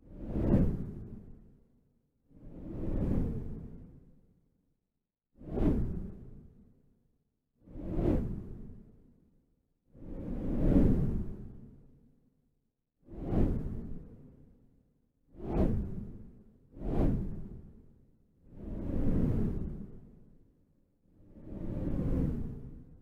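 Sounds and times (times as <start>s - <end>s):
windy whooshes: 0.2s - 1.3s, 2.3s - 4.0s, 5.4s - 6.6s, 7.7s - 8.8s, 10.0s - 11.8s, 13.1s - 14.2s, 15.3s - 17.8s, 18.5s - 20.1s, 21.2s - 23.0s.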